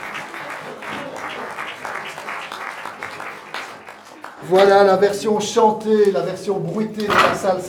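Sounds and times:
crowd applauding: 0:00.0 - 0:04.7
speech: 0:04.4 - 0:07.6.

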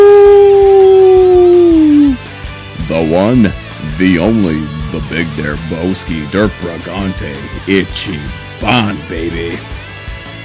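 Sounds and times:
person imitating a wolf howl: 0:00.0 - 0:02.3
speech: 0:03.3 - 0:09.8.

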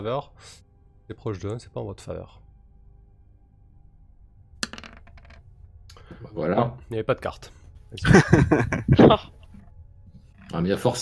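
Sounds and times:
speech: 0:00.0 - 0:02.4, 0:06.2 - 0:09.4, 0:10.5 - 0:11.0
six-sided die rolled during a tabletop role-playing game: 0:04.6 - 0:05.4
laughter: 0:08.0 - 0:09.3.

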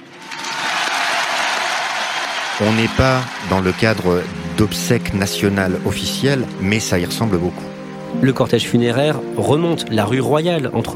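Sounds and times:
crowd applauding a funeral cortege on rue Royale in Paris: 0:00.0 - 0:06.8
speech: 0:02.6 - 0:10.9.

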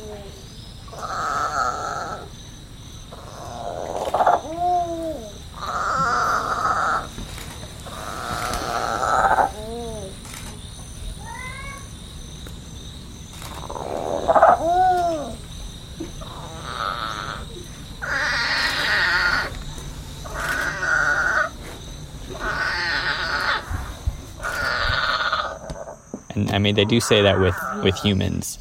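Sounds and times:
baby monkey crying for its missing mother: 0:00.9 - 0:02.3, 0:03.2 - 0:07.1, 0:07.9 - 0:10.2, 0:13.6 - 0:15.4, 0:16.1 - 0:19.6, 0:20.2 - 0:21.6, 0:22.3 - 0:23.7, 0:24.4 - 0:25.6, 0:26.8 - 0:28.2
speech: 0:26.6 - 0:28.5.

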